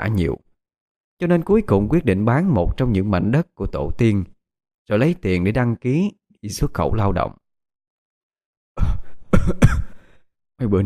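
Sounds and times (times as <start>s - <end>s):
speech: 0.0s - 0.4s, 1.2s - 4.3s, 4.9s - 7.4s, 8.8s - 9.9s, 10.6s - 10.8s
person coughing violently after shoveling snow in the cold: 8.8s - 10.1s.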